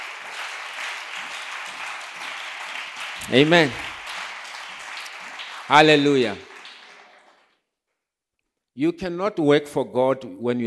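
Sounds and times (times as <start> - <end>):
crowd applauding: 0.0 - 7.6
speech: 3.2 - 3.9, 5.7 - 6.5, 8.8 - 10.6.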